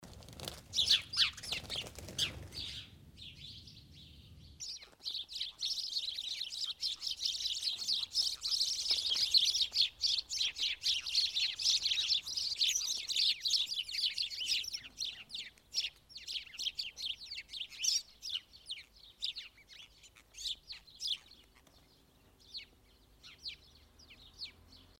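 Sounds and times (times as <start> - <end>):
sparrows' wings fluttering: 0.0 - 2.9, 4.6 - 5.7, 7.6 - 13.6, 21.2 - 21.9
sparrows twittering and scolding: 0.7 - 24.9.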